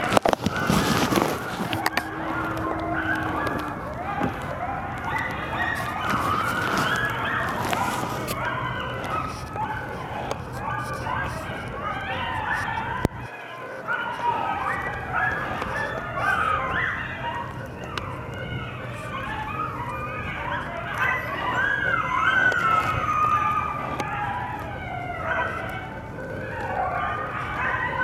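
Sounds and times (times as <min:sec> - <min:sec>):
coyotes vocalizing: 0:00.0 - 0:28.0
siren chatter: 0:00.0 - 0:28.0.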